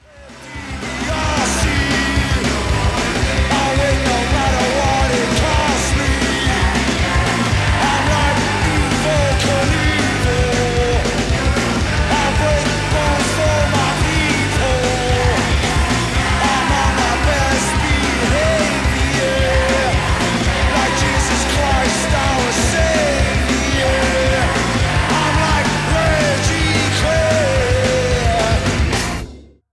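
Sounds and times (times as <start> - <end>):
fast punk rock song with distorted guitars, drums and shouted vocals: 0.0 - 29.5.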